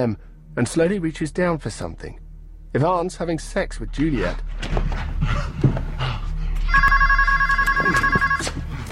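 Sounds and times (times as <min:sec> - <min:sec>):
speech: 0:00.0 - 0:05.5
telephone ringing with a warbling tone: 0:06.7 - 0:08.7.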